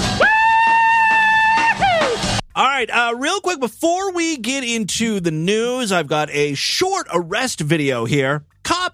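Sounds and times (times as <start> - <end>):
woman shrieking and screaming: 0.2 - 2.3
speech: 2.9 - 8.9.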